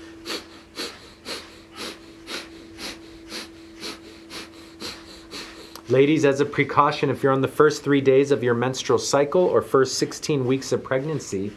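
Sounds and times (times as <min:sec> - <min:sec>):
rapid rhythmic forceful nasal breathing, breath of fire: 0:00.0 - 0:07.8
faint steady hum: 0:00.0 - 0:11.5
speech: 0:05.9 - 0:11.5.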